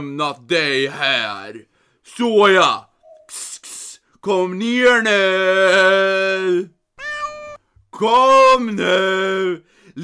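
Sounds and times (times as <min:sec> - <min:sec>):
speech: 0:00.0 - 0:03.5, 0:04.2 - 0:06.8, 0:08.0 - 0:10.0
kitten stuck up in a tree meowing: 0:07.0 - 0:07.6.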